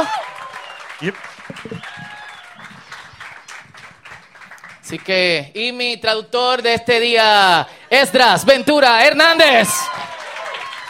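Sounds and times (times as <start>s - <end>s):
congregation applauding: 0.0s - 5.4s, 9.2s - 10.8s
speech: 1.0s - 1.9s, 4.9s - 10.0s.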